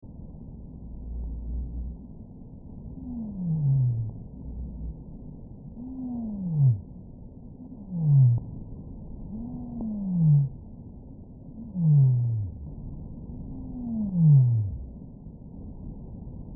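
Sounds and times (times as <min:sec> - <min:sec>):
whale sounds: 0:02.8 - 0:08.6, 0:09.2 - 0:10.7, 0:11.6 - 0:15.0.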